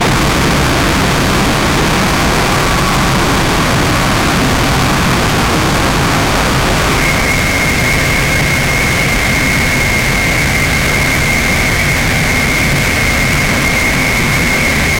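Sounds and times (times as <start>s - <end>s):
aggressive engine: 0.0s - 14.9s.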